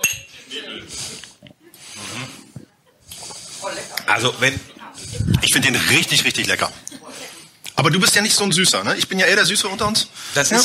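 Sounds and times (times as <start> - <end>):
glasses clinking together in a toast: 0.0 - 0.4
murmuring voices: 0.3 - 7.6
speech: 4.1 - 4.7, 5.3 - 6.8, 7.8 - 10.6.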